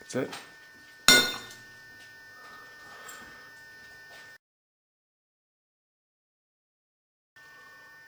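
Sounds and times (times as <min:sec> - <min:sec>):
speech: 0:00.1 - 0:00.5
Pyrex glass dish holding a little soup clinking: 0:01.1 - 0:01.6.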